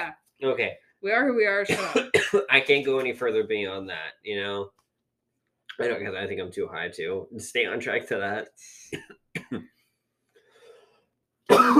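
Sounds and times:
speech: 0.4s - 4.8s, 5.8s - 9.8s, 11.6s - 11.7s
person with a sore throat coughing: 1.7s - 2.5s, 8.9s - 9.7s, 11.5s - 11.7s.

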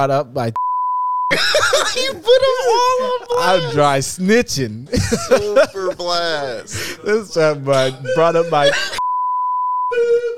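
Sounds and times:
speech: 0.0s - 0.6s, 1.3s - 9.0s
high-pitched censor bleep: 0.6s - 1.3s, 9.0s - 10.0s
laughter: 1.3s - 4.0s, 4.8s - 9.0s.

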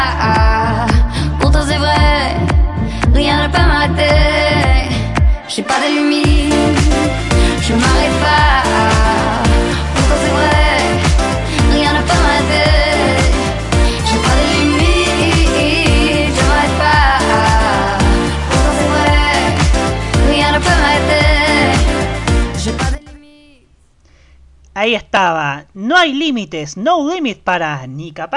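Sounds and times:
driving pop beat: 0.0s - 5.4s, 6.2s - 23.2s
French-language pop song with female vocals: 0.0s - 23.7s
speech: 24.8s - 28.3s.

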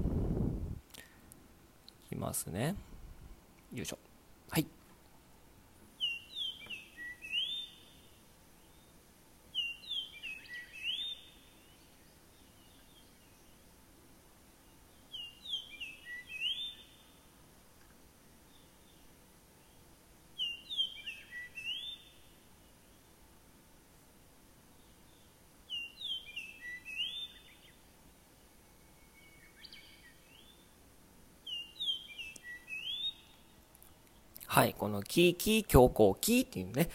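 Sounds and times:
faint hiss: 0.0s - 36.9s
speech: 2.2s - 2.9s, 3.7s - 4.8s, 34.6s - 36.9s
Japanese grosbeak singing fluting whistled phrases: 6.0s - 8.9s, 9.5s - 13.6s, 15.1s - 17.1s, 20.4s - 22.2s, 25.7s - 27.8s, 28.7s - 30.6s, 31.4s - 33.4s.

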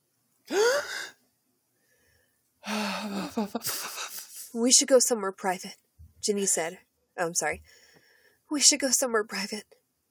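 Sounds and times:
person gasping: 0.5s - 1.2s, 2.6s - 4.4s
speech: 3.0s - 7.8s, 8.5s - 9.8s.

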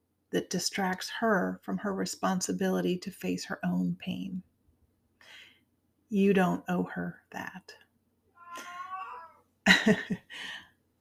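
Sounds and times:
speech: 0.3s - 4.5s, 6.1s - 7.8s, 9.6s - 10.6s
cat meowing: 8.4s - 9.4s.

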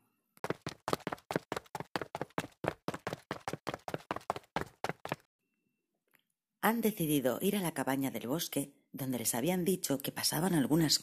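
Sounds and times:
footsteps running quickly down stairs: 0.4s - 5.3s
speech: 6.6s - 11.0s.

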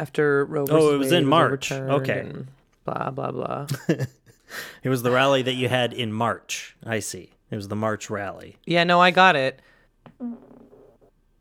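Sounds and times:
speech: 0.0s - 10.5s
fart: 10.1s - 11.2s.

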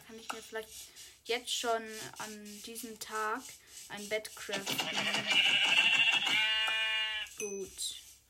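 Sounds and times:
speech: 0.2s - 6.5s, 7.4s - 8.0s
video game sheep bleating: 4.7s - 7.3s.

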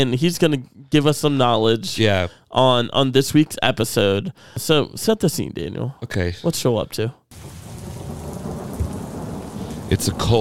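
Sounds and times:
speech: 0.0s - 7.2s, 9.9s - 10.4s
low thunder rumbling: 7.3s - 10.4s
steady heavy rain: 7.3s - 10.4s.

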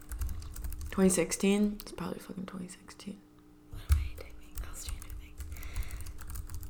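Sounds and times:
rapid typing on a computer keyboard: 0.0s - 1.0s, 3.9s - 6.6s
speech: 1.0s - 3.3s.

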